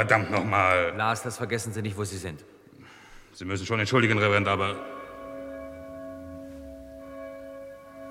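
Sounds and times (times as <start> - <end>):
speech: 0.0 - 2.6, 3.4 - 5.0
church bells ringing: 4.1 - 8.0.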